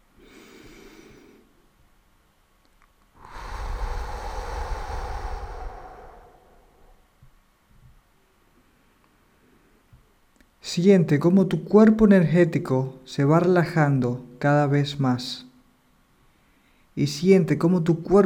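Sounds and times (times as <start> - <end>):
person breathing slowly during a guided relaxation meditation: 0.1 - 1.6, 3.2 - 7.2
speech: 10.8 - 15.5, 17.0 - 18.2.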